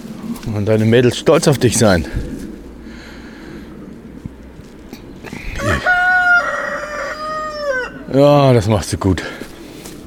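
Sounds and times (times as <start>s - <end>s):
speech: 0.5s - 2.3s, 8.1s - 9.4s
rooster crowing: 5.5s - 8.1s.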